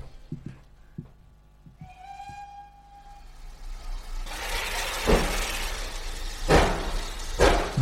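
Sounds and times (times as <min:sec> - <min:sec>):
train whistle: 0:01.8 - 0:06.8
train setting off with broadband hissing and chuffing: 0:01.9 - 0:07.8.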